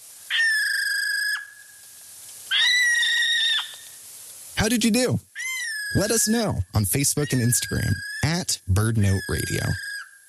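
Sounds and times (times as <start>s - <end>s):
Okarito brown kiwi calling with shrill drawn-out whistles in New Zealand: 0.3s - 1.8s, 2.5s - 4.0s, 5.4s - 6.6s, 7.2s - 10.2s
speech: 4.6s - 5.3s, 5.9s - 9.9s.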